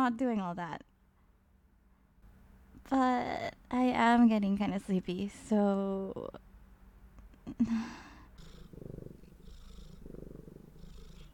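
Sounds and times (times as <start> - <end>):
speech: 0.0 - 0.9, 2.8 - 6.4, 7.5 - 8.0
person imitating a cat purring: 7.5 - 11.3.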